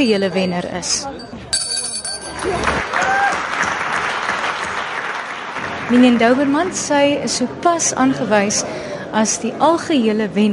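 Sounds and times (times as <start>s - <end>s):
speech: 0.0s - 1.6s, 5.9s - 10.5s
small bell ringing: 0.0s - 2.7s
bustling crowd with voices talking: 0.0s - 3.4s, 5.5s - 10.5s
loud applause: 2.4s - 7.0s.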